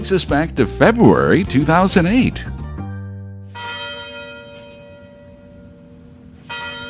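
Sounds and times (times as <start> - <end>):
speech: 0.0 - 2.6
university tower bells chiming: 2.9 - 6.8.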